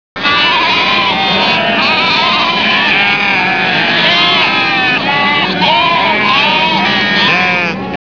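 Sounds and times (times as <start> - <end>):
herd of goats: 0.2 - 8.0.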